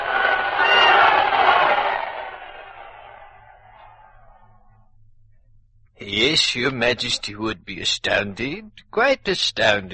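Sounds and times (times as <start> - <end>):
large crowd roaring and cheering: 0.0 - 4.5
speech: 6.2 - 9.9.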